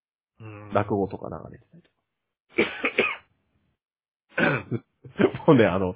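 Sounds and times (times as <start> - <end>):
speech: 0.4 - 2.0, 4.4 - 5.9
loud fit of harsh hacking coughs: 2.6 - 3.3, 4.3 - 5.4.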